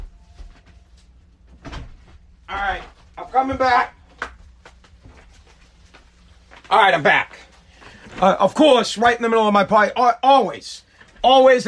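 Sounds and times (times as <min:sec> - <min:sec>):
shuffling: 0:00.0 - 0:08.7
basement door closing with a soft low thud: 0:01.5 - 0:02.1
speech: 0:02.5 - 0:04.0, 0:06.7 - 0:07.4, 0:08.2 - 0:11.6.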